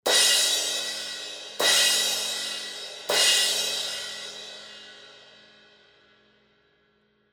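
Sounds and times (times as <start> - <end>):
fast 18-inch crash cymbal hits: 0.1 - 5.0.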